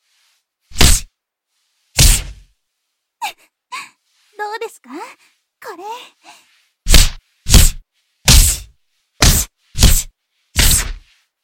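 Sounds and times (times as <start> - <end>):
light short jab punches landing: 0.7 - 1.1, 2.0 - 2.4, 6.9 - 11.0
speech: 4.7 - 6.3.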